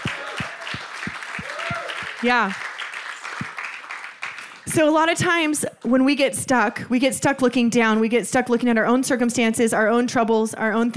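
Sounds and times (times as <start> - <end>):
crowd applauding: 0.0 - 4.9
speech: 2.2 - 2.6, 4.8 - 10.9.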